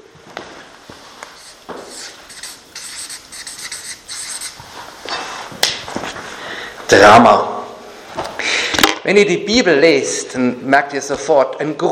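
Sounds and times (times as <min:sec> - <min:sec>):
writing a heading on a board: 0:01.4 - 0:04.7
speech: 0:06.9 - 0:07.5, 0:09.0 - 0:11.9.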